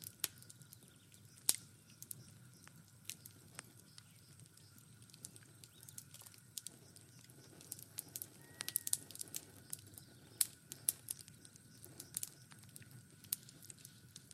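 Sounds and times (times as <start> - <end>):
faint constant whine: 0.0 - 14.3
fireplace fire crackling and popping: 0.0 - 14.3.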